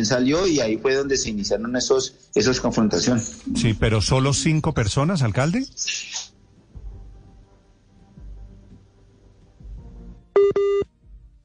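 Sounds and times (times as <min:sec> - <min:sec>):
speech: 0:00.0 - 0:06.3
WhatsApp call beeping tone over mobile data: 0:10.4 - 0:10.8.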